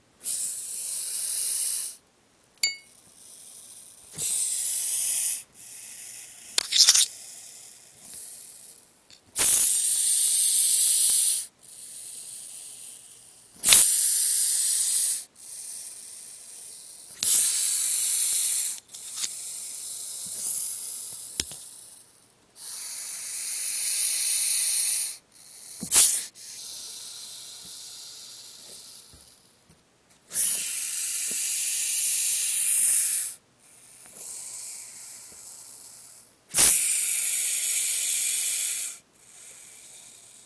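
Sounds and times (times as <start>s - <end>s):
hognose snake hissing: 0.2s - 2.0s, 4.2s - 8.8s, 9.4s - 22.0s, 22.6s - 29.4s, 30.3s - 35.7s, 36.5s - 40.4s.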